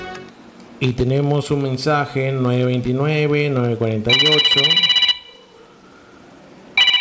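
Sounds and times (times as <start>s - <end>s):
speech: 0.8s - 4.9s
telephone ringing for an incoming call on a radio phone-in: 4.1s - 5.5s, 6.7s - 6.9s.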